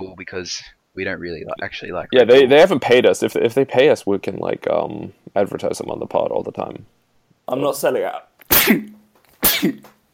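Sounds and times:
speech: 0:00.2 - 0:09.9
loud sharp sneezes with voiced buildup: 0:08.4 - 0:09.9.

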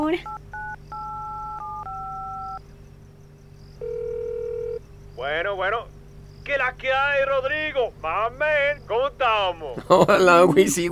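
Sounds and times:
speech: 0:00.1 - 0:00.4, 0:05.2 - 0:10.9
telephone keypad tones dialing a number: 0:00.3 - 0:02.6, 0:03.8 - 0:04.8.

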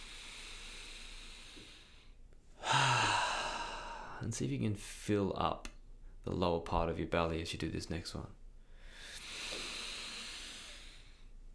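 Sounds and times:
loud breathy exhale out through the mouth: 0:00.0 - 0:04.2, 0:08.7 - 0:11.4
person taking a deep breath in through the nose: 0:00.0 - 0:04.2, 0:08.8 - 0:11.3
speech: 0:04.2 - 0:08.4.

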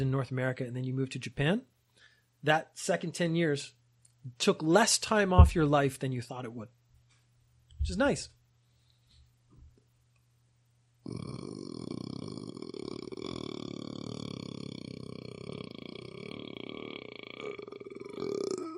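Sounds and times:
speech: 0:00.0 - 0:01.7, 0:02.4 - 0:06.8, 0:07.8 - 0:08.4, 0:11.1 - 0:11.3
long loud sustained rough croaking burp: 0:11.0 - 0:18.7.

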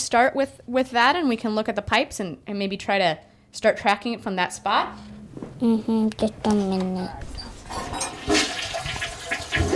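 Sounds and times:
speech: 0:00.1 - 0:08.0
toilet flushing: 0:07.6 - 0:09.7.

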